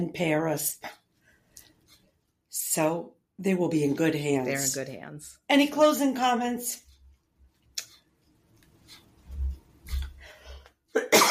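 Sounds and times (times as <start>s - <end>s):
speech: 0.0s - 1.0s, 2.6s - 6.8s
quiet breathing: 1.1s - 2.0s, 10.0s - 10.8s
person coughing: 10.9s - 11.3s.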